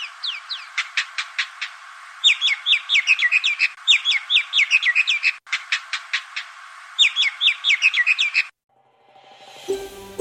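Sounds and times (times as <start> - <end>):
Indian myna calls: 0.0 - 8.6.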